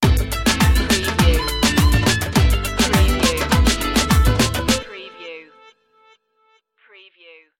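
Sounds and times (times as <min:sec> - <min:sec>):
global flamenco music sting: 0:00.0 - 0:04.8.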